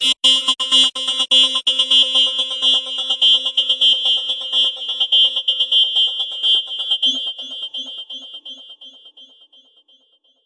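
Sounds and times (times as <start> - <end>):
electronic space banjo loop at 126 BPM: 0.0 - 7.2.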